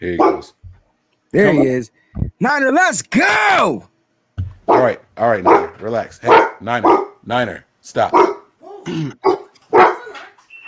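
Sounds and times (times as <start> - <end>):
dog barking: 0.0 - 0.6, 4.7 - 7.2, 8.1 - 10.4
speech: 0.0 - 0.6, 1.3 - 3.9, 4.7 - 9.4.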